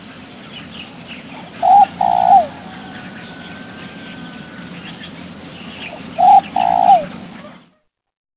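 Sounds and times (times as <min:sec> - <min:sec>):
spotted dove cooing: 0:00.7 - 0:07.8.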